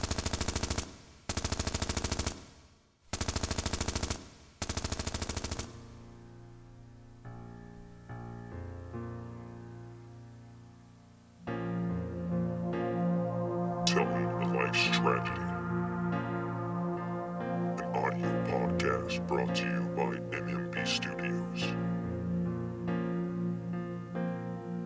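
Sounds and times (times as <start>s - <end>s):
automatic gunfire: 0.0s - 5.8s
low sustained musical tone: 5.9s - 24.8s.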